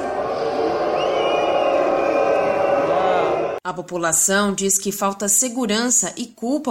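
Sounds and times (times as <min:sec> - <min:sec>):
large crowd booing the French prime minister at a memorial ceremony in Nice: 0:00.0 - 0:03.6
speech: 0:03.6 - 0:06.6.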